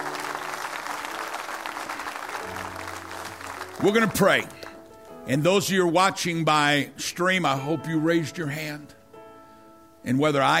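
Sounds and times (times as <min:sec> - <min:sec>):
large crowd applauding: 0:00.0 - 0:04.9
speech: 0:03.8 - 0:04.6, 0:05.2 - 0:09.0, 0:10.0 - 0:10.5.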